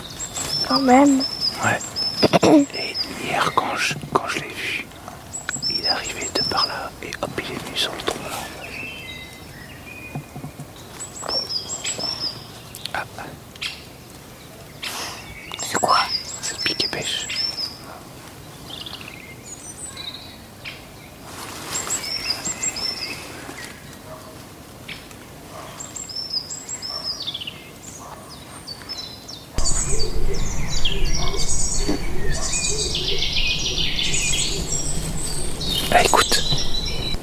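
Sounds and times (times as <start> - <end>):
small birds chirping and trilling in a woodland: 0.0 - 37.2
speech: 0.7 - 4.9, 5.9 - 8.6
stock dove cooing in a woodland: 29.6 - 37.2.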